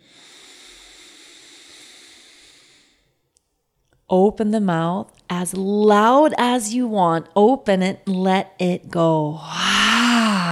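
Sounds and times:
deep inhale through the nose during a guided breathing exercise: 0.0s - 3.2s
speech: 4.1s - 9.6s.

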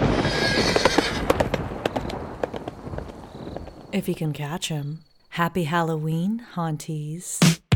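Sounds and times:
horse hooves clip-clopping in a galloping rhythm: 0.0s - 3.8s
horse neighing: 0.2s - 1.3s
speech: 4.0s - 7.6s.

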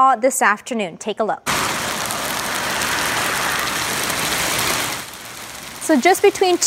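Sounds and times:
speech: 0.0s - 1.8s, 5.9s - 6.6s
large hail from a thunderstorm hitting hard surfaces in Port Coquitlam: 1.5s - 6.6s.

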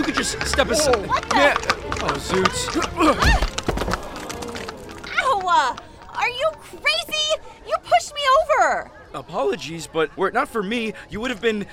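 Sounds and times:
speech: 0.0s - 3.5s, 5.6s - 11.7s
horses' hooves galloping past: 0.0s - 7.5s
horse whinnying: 0.7s - 5.4s.

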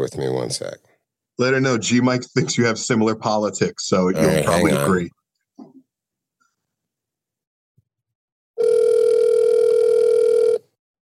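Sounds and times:
speech: 0.0s - 5.2s
phone ringing tone as a steady electronic buzz: 8.6s - 10.7s.

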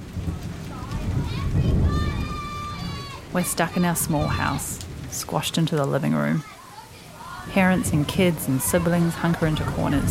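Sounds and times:
steady rain: 0.0s - 10.0s
faint high voices or squeaky tones: 0.6s - 4.8s, 6.4s - 10.0s
speech: 3.4s - 6.6s, 7.4s - 10.0s.

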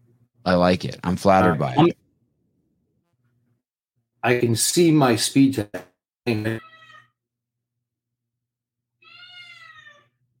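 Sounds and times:
speech: 0.4s - 2.0s, 4.2s - 6.7s
cat meowing: 6.6s - 7.2s, 9.0s - 10.2s.

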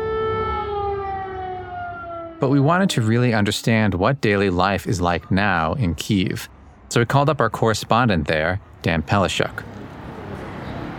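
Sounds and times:
air raid siren wailing in Kyiv in summer: 0.0s - 3.2s
speech: 2.4s - 9.8s.

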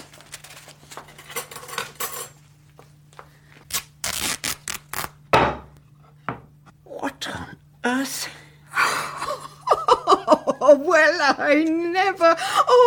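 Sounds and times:
rummaging through a kitchen drawer of cutlery: 0.4s - 2.4s
cutlery clattering: 1.0s - 2.4s
speech: 7.2s - 8.4s, 10.6s - 12.8s
laughter: 8.8s - 11.0s.

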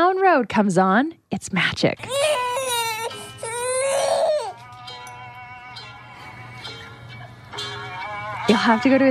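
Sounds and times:
steady hum: 0.0s - 9.0s
speech: 0.4s - 2.4s, 8.5s - 9.0s
little girl whimpering: 2.0s - 4.7s
little girl crying: 2.1s - 4.6s.

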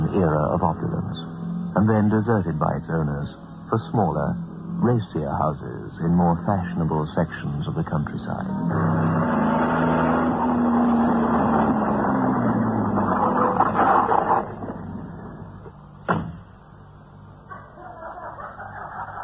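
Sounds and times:
car engine running: 0.0s - 17.6s
speech: 0.2s - 10.1s
sharp knock or thump: 16.0s - 16.5s
laughter: 17.7s - 19.2s.

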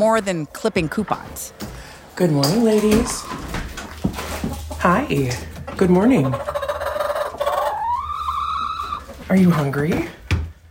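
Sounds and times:
speech: 0.0s - 3.5s, 4.8s - 6.6s, 9.3s - 10.2s
backyard chickens clucking and calling: 0.0s - 10.0s
chicken drawn-out rising squawk: 5.6s - 9.2s.

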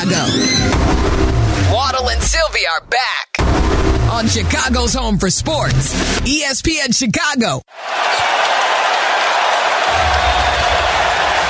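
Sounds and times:
speech: 0.1s - 3.3s, 4.1s - 8.5s
deep rumble: 0.7s - 2.6s, 3.4s - 6.3s
packed arena crowd roaring and cheering: 7.7s - 11.4s.

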